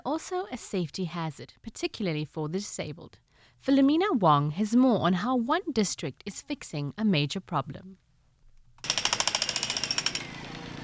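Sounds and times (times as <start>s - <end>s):
speech: 0.2s - 8.0s
jackhammer pounding cement: 8.8s - 10.8s.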